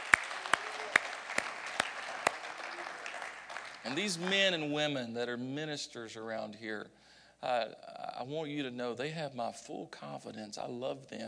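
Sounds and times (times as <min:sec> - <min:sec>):
scattered applause: 0:00.0 - 0:04.6
audience clapping hands: 0:00.0 - 0:04.8
speech: 0:03.8 - 0:11.2.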